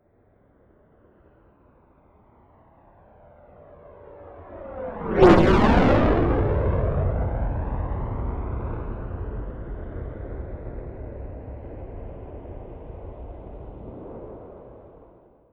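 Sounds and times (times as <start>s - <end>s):
military jet fighter flyby: 3.7s - 15.2s.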